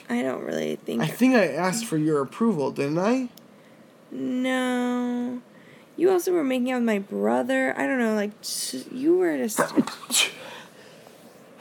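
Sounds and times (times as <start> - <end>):
speech: 0.1 - 3.4, 4.1 - 10.6
man sneezing: 10.0 - 10.6.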